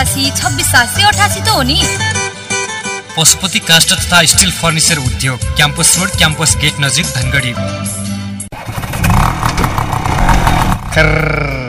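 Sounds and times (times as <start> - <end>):
speech: 0.1 - 2.2, 3.2 - 8.2, 10.9 - 11.5
old scooter engine running with a rough rattling sputter: 8.5 - 11.3.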